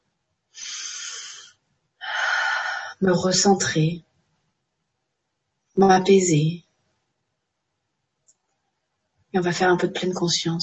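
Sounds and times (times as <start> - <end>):
breathy exhalations during a calming breathing exercise: 0.6 - 3.0
speech: 3.0 - 4.1, 5.8 - 6.6, 9.3 - 10.6.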